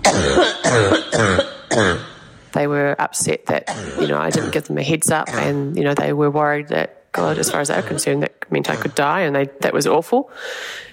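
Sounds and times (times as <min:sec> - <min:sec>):
harsh coughing: 0:00.0 - 0:02.3, 0:03.6 - 0:05.7, 0:07.2 - 0:09.0
speech: 0:00.1 - 0:01.5, 0:03.1 - 0:10.9.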